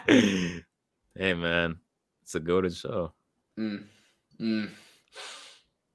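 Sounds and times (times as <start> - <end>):
heavy breathing: 0.0 - 0.6, 3.8 - 5.7
speech: 1.2 - 5.4.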